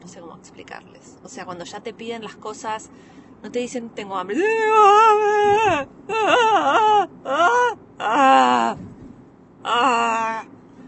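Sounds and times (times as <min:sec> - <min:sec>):
speech: 0:00.1 - 0:09.0, 0:09.6 - 0:10.5
adult voice mimicking a small child's whiny crying: 0:04.3 - 0:08.8, 0:09.6 - 0:10.5.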